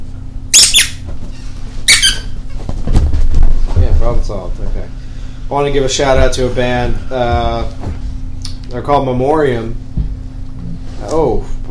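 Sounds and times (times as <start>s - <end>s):
low hum: 0.0s - 11.6s
squeaky dog toy squeezed for a dog: 0.5s - 1.0s, 1.8s - 2.4s
speech: 4.3s - 8.0s, 8.7s - 9.8s, 11.0s - 11.5s.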